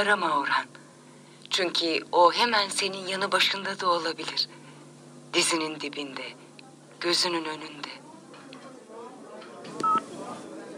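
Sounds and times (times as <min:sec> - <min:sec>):
speech: 0:00.0 - 0:00.8, 0:01.6 - 0:04.6, 0:05.3 - 0:06.4, 0:07.0 - 0:08.0
faint murmur of noise: 0:06.2 - 0:10.7
telephone keypad tone: 0:09.8 - 0:10.0.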